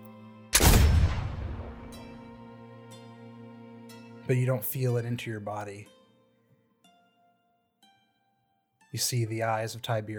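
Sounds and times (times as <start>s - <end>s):
gunshot with long rumbling echo: 0.6s - 2.1s
speech: 4.3s - 6.0s, 8.9s - 10.1s.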